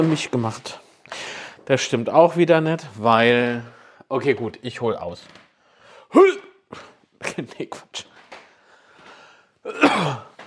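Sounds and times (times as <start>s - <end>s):
speech: 0.0s - 5.4s, 6.1s - 8.1s, 9.6s - 10.3s
man coughing: 9.7s - 10.4s.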